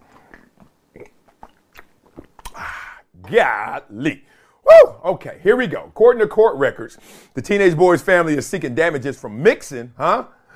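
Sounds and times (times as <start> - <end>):
mouth clicks and wet smacks: 0.0 - 3.2
person sipping a drink: 0.0 - 3.2
speech: 3.3 - 10.4.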